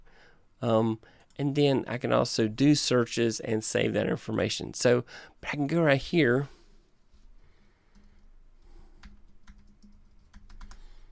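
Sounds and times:
speech: 0.6 - 6.6
typing on a computer keyboard: 9.0 - 10.8.

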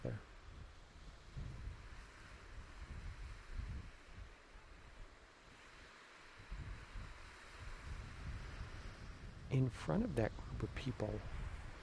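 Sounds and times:
speech: 0.0 - 0.3, 9.5 - 11.4
wind buffeting the microphone on a beach: 0.0 - 11.8.

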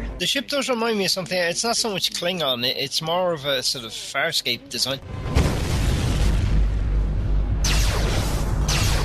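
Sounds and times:
speech: 0.2 - 5.5
constant loud deep rumbling drone: 5.0 - 9.0
spaceship weapons firing in a sci-fi space battle: 5.4 - 9.0.

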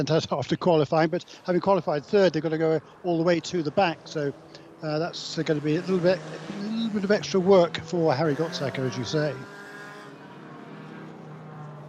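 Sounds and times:
speech: 0.0 - 9.5
race car engines rumbling on a formation lap: 0.0 - 11.8.

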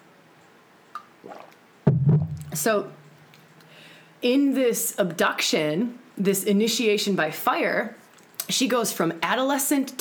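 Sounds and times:
person drinking a glass of water: 1.0 - 1.6, 2.2 - 2.6
speech: 2.6 - 3.0, 4.2 - 9.9.

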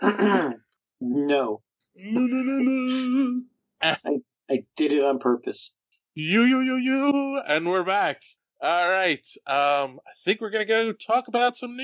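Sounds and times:
throat clearing: 0.0 - 0.8
speech: 0.0 - 11.8.

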